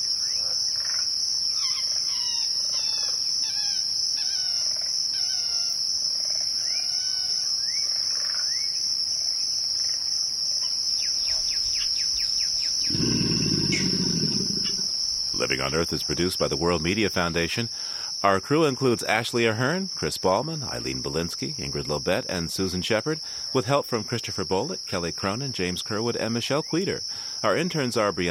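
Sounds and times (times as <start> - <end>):
high-pitched insect or frog trill in a Louisiana bayou: 0.0 - 28.2
deep rough alligator grunt in a Louisiana bayou: 12.9 - 15.5
speech: 15.5 - 28.2.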